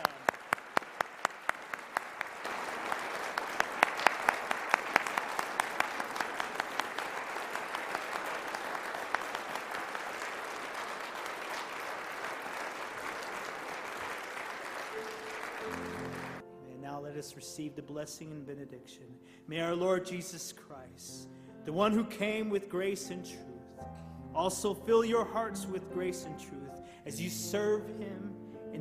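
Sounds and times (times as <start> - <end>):
audience applauding graduates: 0.0 - 16.4
speech: 17.2 - 23.5, 24.4 - 28.3.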